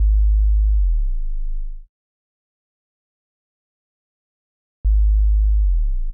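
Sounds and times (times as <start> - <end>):
synth bass: 0.0 - 1.8, 4.9 - 6.1.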